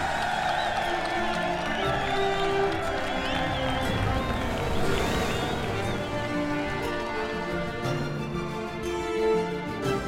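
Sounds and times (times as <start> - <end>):
large crowd of sailors cheering and shouting: 0.0 - 9.9.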